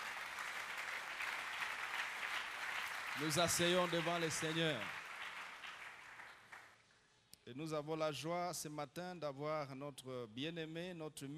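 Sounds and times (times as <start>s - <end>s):
congregation applauding in church at a worship service: 0.0s - 6.8s
speech: 3.2s - 5.0s, 7.5s - 11.3s.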